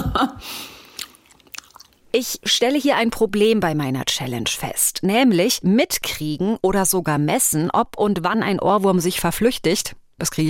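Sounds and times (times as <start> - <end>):
speech: 0.2 - 0.7, 2.1 - 10.4
wet chewing and lip-smacking: 0.8 - 2.1.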